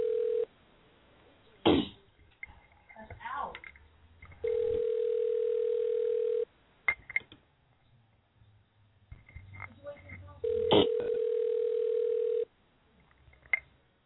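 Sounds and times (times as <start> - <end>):
ringing tone of an outgoing telephone call over a narrow phone line: 0.0 - 0.5, 4.4 - 6.5, 10.4 - 12.5
throat noises: 1.6 - 2.1.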